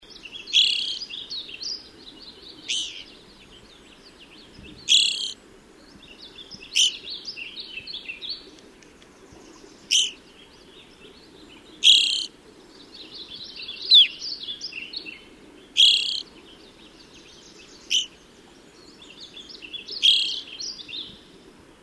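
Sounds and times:
Evening Grosbeak calls: 0.2s - 1.8s, 2.6s - 3.1s, 4.7s - 5.4s, 6.1s - 7.4s, 9.8s - 10.2s, 11.8s - 12.3s, 13.0s - 15.2s, 15.8s - 16.3s, 17.2s - 18.2s, 19.0s - 21.2s.

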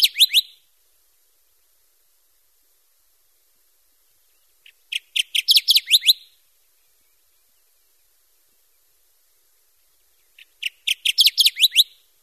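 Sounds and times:
Kirtland's Warbler song of rapid rich chips: 0.0s - 0.6s, 4.2s - 12.1s.

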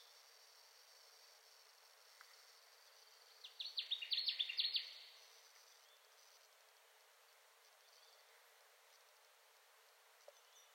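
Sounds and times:
Connecticut warbler singing: 2.9s - 6.1s, 10.2s - 10.7s.

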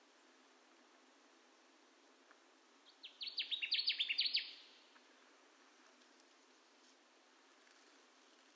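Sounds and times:
Connecticut warbler song: 2.8s - 5.0s.

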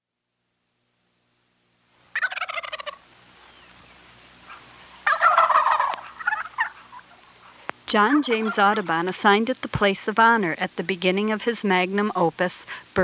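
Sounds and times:
wild turkey rattling gobbles: 2.1s - 9.1s
speech: 7.9s - 13.0s.

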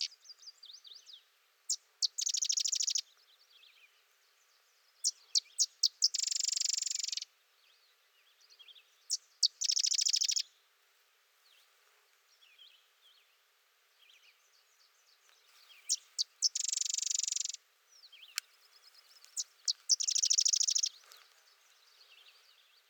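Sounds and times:
sedge wren singing: 0.0s - 1.1s, 1.7s - 3.1s, 5.0s - 7.3s, 9.1s - 10.5s, 15.6s - 22.6s
birds twittering softly: 0.0s - 10.6s, 11.4s - 22.8s.

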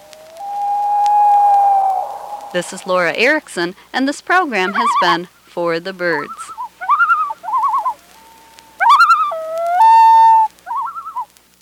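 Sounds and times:
loon tremolo calls and wails: 0.0s - 3.4s, 4.6s - 5.2s, 6.2s - 11.3s
speech: 2.5s - 6.6s.

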